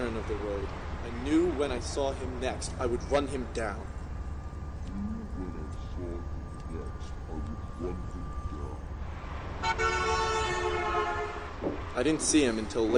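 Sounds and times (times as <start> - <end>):
faint tonal sounds: 0.0 - 12.9
train passing a road crossing: 0.0 - 12.9
speech: 0.1 - 4.0, 9.6 - 10.2, 12.0 - 12.9
train horn blast: 9.3 - 12.0.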